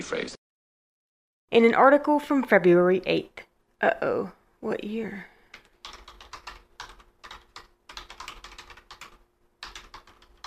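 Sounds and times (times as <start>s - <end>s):
speech: 0.0s - 0.4s, 1.5s - 5.3s
quiet typing on a computer keyboard: 5.5s - 10.4s.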